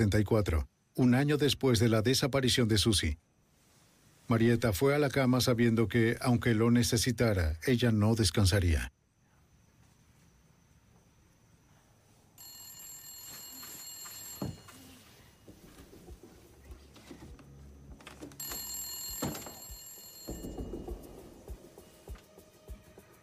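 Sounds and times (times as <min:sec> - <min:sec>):
speech: 0:00.0 - 0:03.3, 0:04.3 - 0:09.0
low noise: 0:00.0 - 0:23.2
faint rustling: 0:03.4 - 0:04.4, 0:09.7 - 0:20.2
telephone bell ringing at night: 0:12.4 - 0:15.6, 0:18.3 - 0:21.6.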